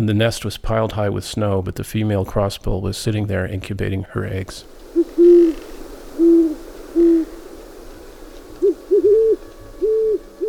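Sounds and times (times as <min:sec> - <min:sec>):
speech: 0:00.0 - 0:04.8
pair of great horned owls hooting in a duet: 0:04.6 - 0:10.4.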